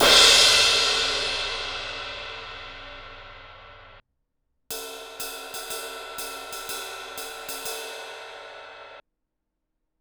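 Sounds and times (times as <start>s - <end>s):
18 inch crash cymbal: 0.0s - 4.0s.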